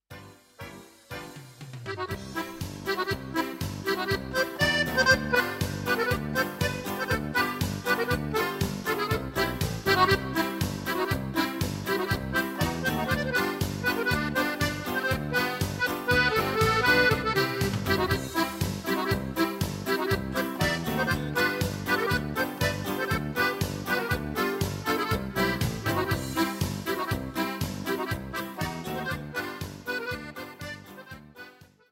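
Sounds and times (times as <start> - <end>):
accordion: 0.1 - 31.9.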